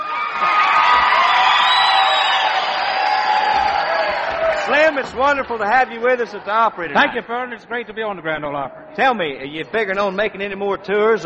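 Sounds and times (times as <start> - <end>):
country music show audience cheering and whooping: 0.0 - 5.6
speech: 4.9 - 11.2.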